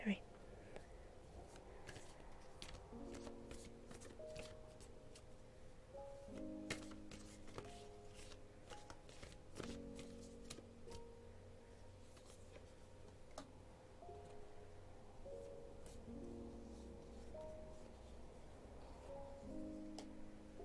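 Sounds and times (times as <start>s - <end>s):
quiet sustained music notes: 0.0s - 20.6s
tarot cards being shuffled and drawn: 1.4s - 5.3s, 6.3s - 11.1s, 12.0s - 12.8s.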